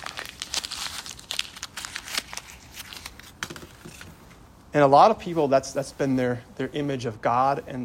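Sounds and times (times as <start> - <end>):
paper image being crumpled up: 0.0 - 4.2
speech: 4.7 - 7.8.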